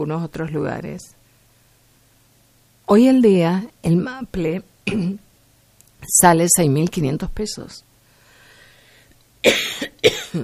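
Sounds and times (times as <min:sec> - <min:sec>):
speech: 0:00.0 - 0:01.2, 0:02.9 - 0:05.2, 0:06.0 - 0:07.9, 0:09.4 - 0:10.4
sharp harsh coughs: 0:04.9 - 0:05.2, 0:09.4 - 0:10.4.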